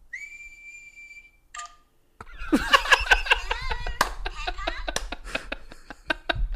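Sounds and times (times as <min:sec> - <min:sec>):
person whistling one steady clear high note: 0:00.0 - 0:01.4
people laughing: 0:02.3 - 0:06.5
people clapping: 0:03.6 - 0:05.2.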